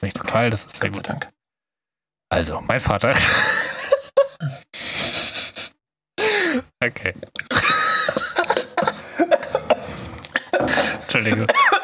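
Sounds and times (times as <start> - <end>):
speech: 0.0 - 1.4, 2.3 - 3.8, 6.8 - 7.7, 10.6 - 11.7
laughter: 3.1 - 4.6, 7.5 - 9.6
coughing and spluttering after choking on something swallowed the wrong way: 7.2 - 11.8.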